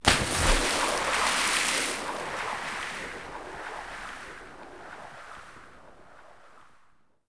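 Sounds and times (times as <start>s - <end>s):
object entering water: 0.0s - 5.7s.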